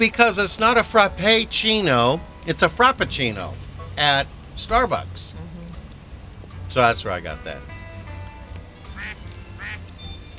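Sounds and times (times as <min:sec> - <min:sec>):
speech: 0:00.0 - 0:05.4, 0:06.8 - 0:07.7
steady low rumble: 0:00.0 - 0:08.8
duck quacking: 0:09.0 - 0:09.8.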